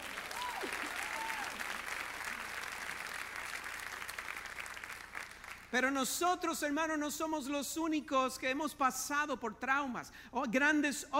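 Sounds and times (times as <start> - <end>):
audience applause: 0.0 - 5.7
faint cheers: 0.1 - 1.8
speech: 5.7 - 11.1.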